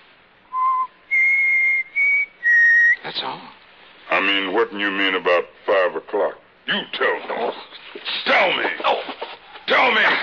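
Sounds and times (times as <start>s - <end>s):
person whistling three clear notes: 0.5s - 3.0s
speech: 3.1s - 10.2s.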